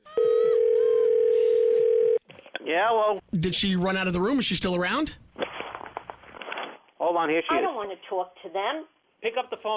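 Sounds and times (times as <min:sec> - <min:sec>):
telephone dial tone after a call is hung up: 0:00.2 - 0:02.2
speech: 0:02.7 - 0:05.2, 0:07.2 - 0:09.7.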